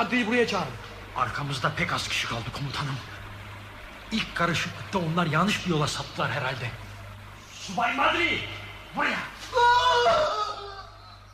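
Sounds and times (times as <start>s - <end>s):
speech: 0.0s - 3.2s, 4.1s - 6.8s, 7.7s - 10.5s
wounded man moaning and wailing in pain: 9.5s - 11.2s.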